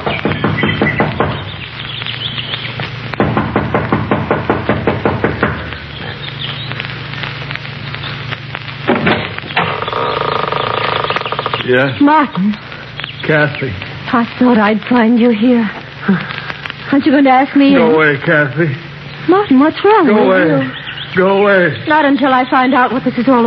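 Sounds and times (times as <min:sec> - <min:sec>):
young woman knocking impatiently on the wooden front door of a mountain lodge: 0:00.0 - 0:01.5, 0:03.2 - 0:05.7
faint outdoor ambience: 0:00.0 - 0:23.4
steady low hum: 0:00.0 - 0:23.4
speech: 0:11.7 - 0:12.6, 0:13.3 - 0:23.4.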